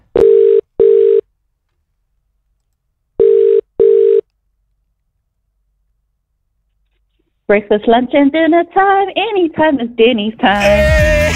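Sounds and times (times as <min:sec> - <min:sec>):
telephone line tone beeps: 0:00.2 - 0:01.2, 0:03.2 - 0:04.2
speech: 0:07.5 - 0:11.3.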